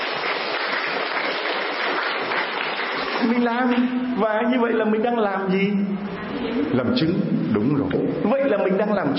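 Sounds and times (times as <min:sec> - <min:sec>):
crowd clapping: 0:00.0 - 0:03.9
speech: 0:03.2 - 0:09.1.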